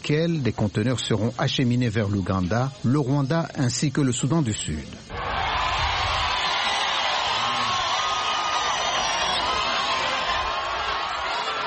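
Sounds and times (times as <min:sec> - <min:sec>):
speech: 0:00.0 - 0:05.2
enthusiastic crowd roaring and cheering at a train station: 0:05.1 - 0:11.6
people whooping in a crowd: 0:05.1 - 0:11.6.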